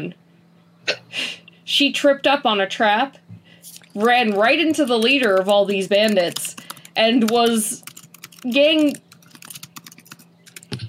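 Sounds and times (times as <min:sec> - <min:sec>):
speech: 0:00.0 - 0:00.2, 0:00.8 - 0:03.2, 0:04.0 - 0:09.0
typing on a computer keyboard: 0:03.9 - 0:10.8.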